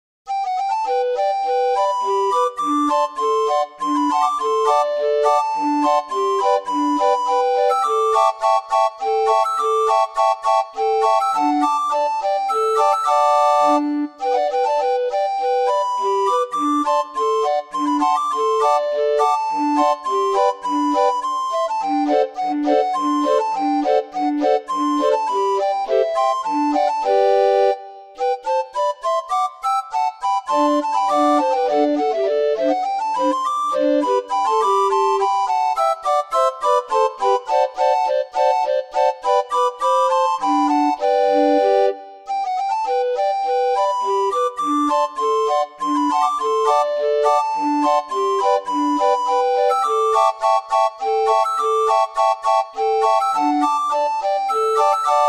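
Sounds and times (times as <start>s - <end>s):
barrel organ playing a minuet: 0.4s - 55.2s.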